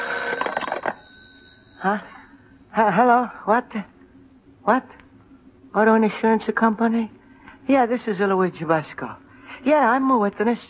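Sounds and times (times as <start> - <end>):
telephone bell ringing: 0.0 - 2.5
faint steady hum: 0.0 - 10.6
speech: 1.8 - 2.2, 2.8 - 3.9, 4.6 - 5.0, 5.7 - 10.6.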